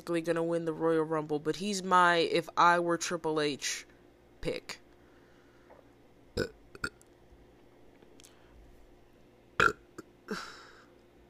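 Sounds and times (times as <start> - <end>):
speech: 0.0 - 4.8, 6.4 - 6.6
person burping: 6.4 - 7.0, 9.6 - 10.6.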